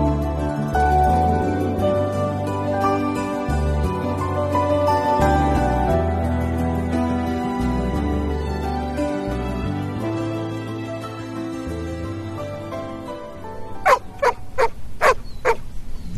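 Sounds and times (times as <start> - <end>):
mellow instrumental music: 0.0 - 15.6
dog barking in sharp loud bursts: 13.8 - 15.6.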